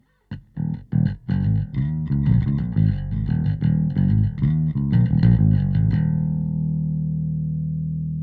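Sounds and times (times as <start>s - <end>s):
slap bass: 0.3s - 8.2s.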